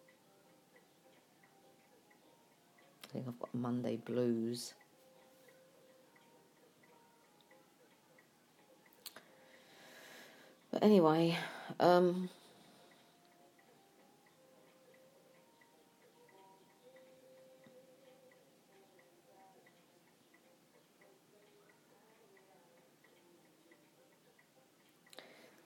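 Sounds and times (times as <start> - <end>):
household clock ticking: 0.0 - 25.6
speech: 3.1 - 4.8, 10.8 - 12.4.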